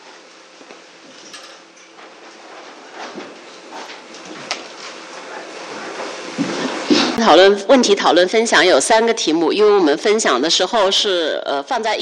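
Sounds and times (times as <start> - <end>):
chairs scraping and dragging across a hard floor: 1.1 - 7.2
speech: 7.2 - 11.9.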